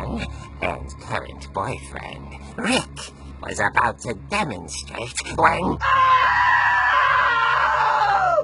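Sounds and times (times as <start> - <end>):
speech: 0.2 - 6.4
long loud high-pitched scream: 5.8 - 8.4.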